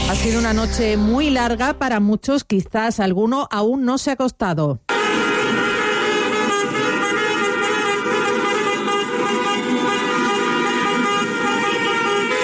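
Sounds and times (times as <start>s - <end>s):
speech: 0.1s - 4.8s
car horns honking in the streets during celebrations of a World Cup win: 4.9s - 12.4s.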